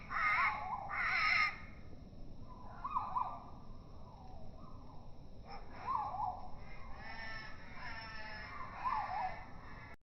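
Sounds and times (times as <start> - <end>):
juvenile great tit begging for food with rough wavering cries: 0.0 - 1.6, 5.5 - 10.0.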